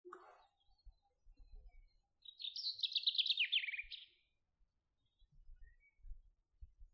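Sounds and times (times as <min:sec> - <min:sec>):
common chaffinch Fringilla coelebs song: 0:00.5 - 0:04.3.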